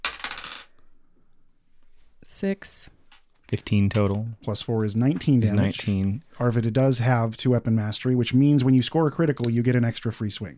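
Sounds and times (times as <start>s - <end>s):
ten-sided and four-sided dice rolling on a hard tabletop: 0.0s - 0.8s
speech: 2.4s - 10.5s.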